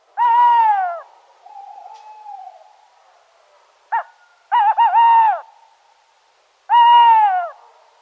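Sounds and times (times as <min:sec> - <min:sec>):
owl hooting: 0:00.2 - 0:02.8, 0:03.9 - 0:05.6.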